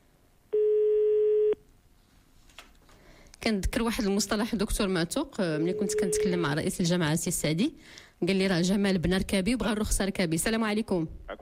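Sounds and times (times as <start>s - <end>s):
telephone call tone beep during an attempted call: 0.5s - 1.6s, 5.7s - 6.4s
speech: 3.4s - 11.4s.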